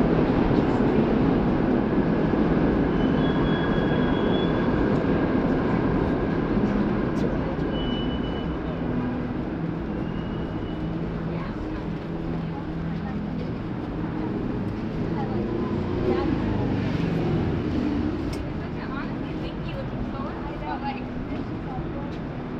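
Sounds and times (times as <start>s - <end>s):
crowd voices at a street performance: 0.0s - 22.5s
steady dense roar of street traffic: 0.0s - 22.5s.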